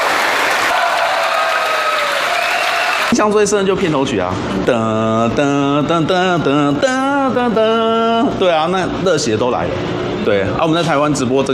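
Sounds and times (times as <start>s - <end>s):
audience cheers and whistles: 0.0s - 3.2s
large indoor theater audience applause: 0.0s - 3.2s
speech: 3.2s - 11.5s.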